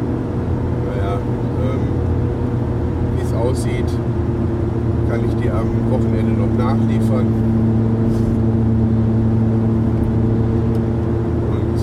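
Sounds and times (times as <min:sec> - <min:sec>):
road rumble inside a moving car: 0:00.0 - 0:11.8
steady engine drone inside a moving car: 0:00.0 - 0:11.8
speech: 0:05.2 - 0:07.6.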